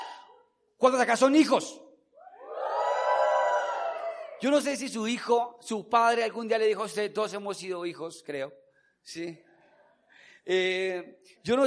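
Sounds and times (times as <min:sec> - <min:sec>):
speech: 0:00.8 - 0:01.9, 0:04.4 - 0:09.5, 0:10.4 - 0:11.6
audience shouting for joy: 0:02.2 - 0:04.4.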